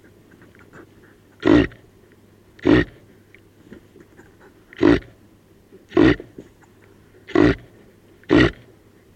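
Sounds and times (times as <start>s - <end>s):
low steady hum: 0.0s - 9.1s
reindeer grunting: 1.4s - 1.8s, 2.6s - 3.0s, 4.7s - 5.2s, 5.9s - 6.4s, 7.3s - 8.7s.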